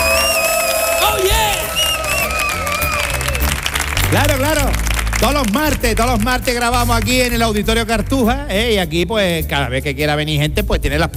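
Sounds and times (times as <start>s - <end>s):
excited exclamation: 0.0s - 3.5s
live audience in an auditorium cheering and whooping: 0.0s - 5.3s
speech: 5.2s - 11.1s.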